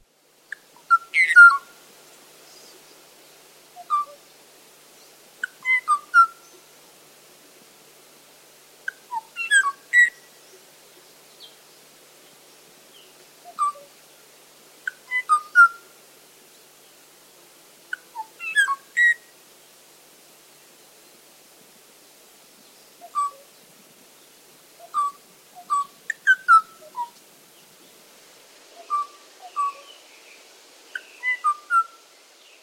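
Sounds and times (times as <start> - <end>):
Kauai o'o mating call: 0.8 - 1.7, 3.8 - 4.2, 5.4 - 6.5, 8.9 - 10.3, 13.4 - 13.9, 14.9 - 15.8, 17.9 - 19.3, 23.0 - 23.4, 24.8 - 27.2, 28.8 - 30.0, 30.9 - 32.0.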